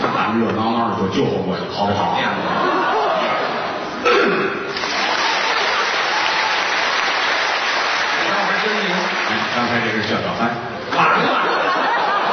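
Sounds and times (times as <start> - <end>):
speech: 0.3 - 2.7
laughter: 2.2 - 4.0, 4.7 - 6.9, 10.8 - 12.3
audience applause: 4.7 - 10.4.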